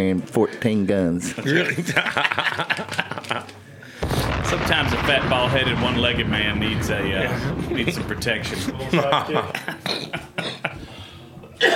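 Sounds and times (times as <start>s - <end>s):
speech: 0.0s - 3.6s, 4.4s - 10.2s
laughter: 1.3s - 3.7s, 7.2s - 11.7s
person coughing harshly: 9.8s - 10.8s, 11.6s - 11.7s.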